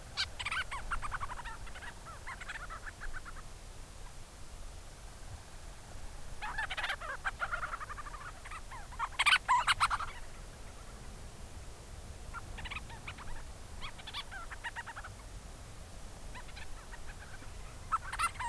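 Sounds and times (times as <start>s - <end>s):
Forster's Tern Sterna forsteri advertisement calls over colony: 0.0s - 3.5s, 6.4s - 11.1s, 12.3s - 15.3s, 16.3s - 18.4s.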